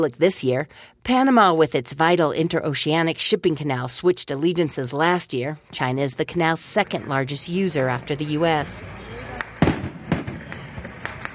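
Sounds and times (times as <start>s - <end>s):
speech: 0.0s - 9.1s
fireworks bursting at the opening ceremony of a container port in Panama: 9.4s - 11.3s.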